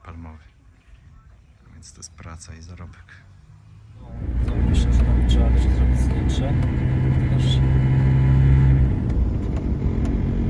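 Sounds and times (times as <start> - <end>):
road noise: 1.3 - 10.4
speech: 1.8 - 3.3, 4.7 - 7.9
car engine rumble: 2.8 - 10.4
droning hum: 3.9 - 10.4.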